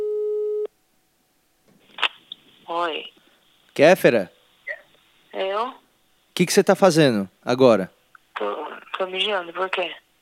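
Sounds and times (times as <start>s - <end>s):
telephone call tone while dialing: 0.0s - 0.7s
speech: 2.7s - 3.2s, 3.8s - 4.4s, 6.4s - 10.0s.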